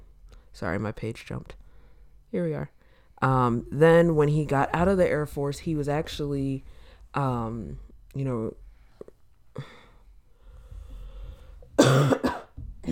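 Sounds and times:
speech: 0.6s - 1.6s, 2.3s - 8.6s, 9.6s - 9.8s, 11.9s - 12.2s
throat noises and breaths: 8.8s - 11.8s
harsh coughing: 11.8s - 12.8s.

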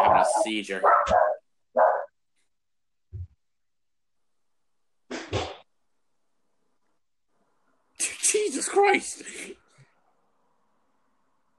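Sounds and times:
dog barking at a package delivery: 0.0s - 2.1s
speech: 0.5s - 1.3s, 8.7s - 9.6s.

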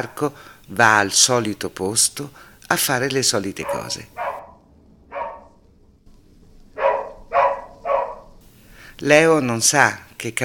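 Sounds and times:
speech: 0.0s - 4.2s, 9.0s - 10.4s
dog barking: 3.6s - 5.6s, 6.8s - 8.4s.

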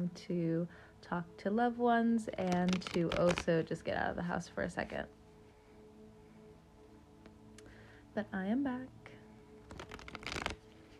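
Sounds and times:
speech: 0.0s - 5.2s, 8.2s - 9.0s
deck of tarot cards being shuffled: 2.5s - 3.5s, 9.6s - 10.9s.

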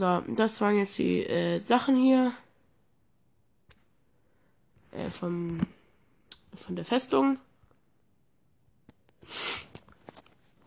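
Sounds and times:
speech: 0.0s - 2.4s, 5.0s - 5.8s, 6.6s - 7.5s, 9.2s - 9.6s
breathing: 4.1s - 4.7s
sharp congested sniff through a stuffy nose: 9.2s - 9.8s.

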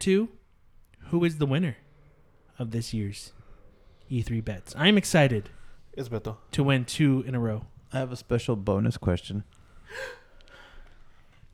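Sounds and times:
speech: 0.0s - 0.4s, 1.1s - 1.8s, 2.6s - 3.4s, 4.1s - 10.2s
dramatic gasp: 9.8s - 11.0s.

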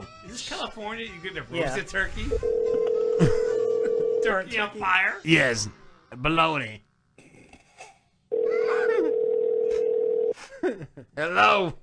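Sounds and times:
speech: 0.4s - 3.4s, 4.2s - 6.9s, 10.6s - 11.8s
telephone ring tone over a call line to a store deli department: 2.4s - 4.4s, 8.3s - 10.4s.

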